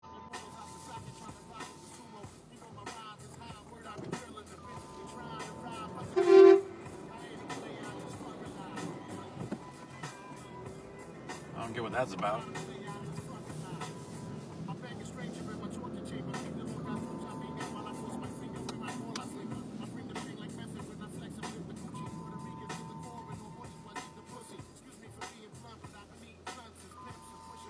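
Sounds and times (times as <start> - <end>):
loud dense traffic rumble: 0.5 - 27.6
truck horn blasts: 4.7 - 9.3, 17.1 - 19.2, 21.4 - 24.4
speech: 11.8 - 12.7.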